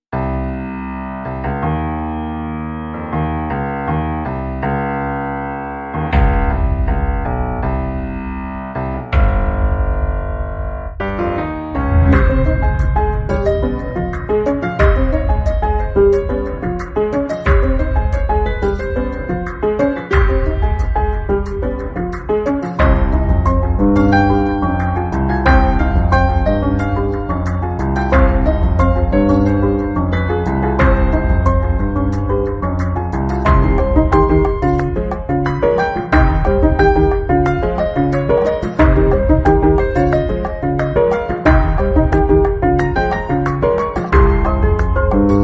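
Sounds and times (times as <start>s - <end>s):
piano background music: 0.1s - 45.4s.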